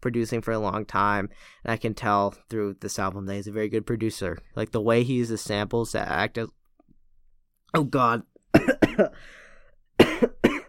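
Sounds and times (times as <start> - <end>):
speech: 0.0 - 6.6, 7.7 - 9.4
person coughing harshly: 8.5 - 9.4, 10.0 - 10.6.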